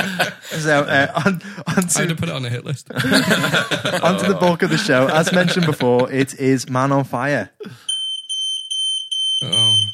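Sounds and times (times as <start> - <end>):
laughter: 0.0 - 2.2, 3.0 - 6.4
speech: 0.2 - 7.9, 9.4 - 9.7
piercing high-pitched smoke alarm beeping: 7.9 - 9.9.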